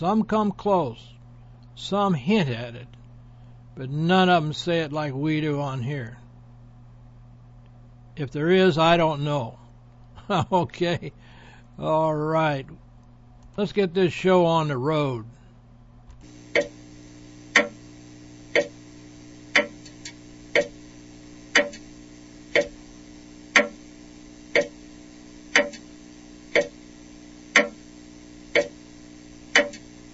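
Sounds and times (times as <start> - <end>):
speech: 0.0 - 1.2, 1.8 - 3.0, 3.8 - 6.2, 8.2 - 9.6, 10.3 - 12.8, 13.6 - 15.4, 16.5 - 16.7
low constant hum: 0.0 - 30.1
clock ticking: 16.5 - 16.8, 17.5 - 17.8, 18.5 - 18.8, 19.5 - 20.8, 21.5 - 21.8, 22.5 - 22.8, 23.5 - 23.8, 24.5 - 24.8, 25.5 - 25.9, 26.5 - 26.8, 27.5 - 27.8, 28.5 - 28.8, 29.5 - 29.9.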